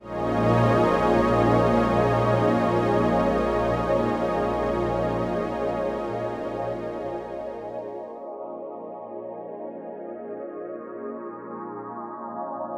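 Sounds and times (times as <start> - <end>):
automated wet synth pad: 0.0 - 7.8.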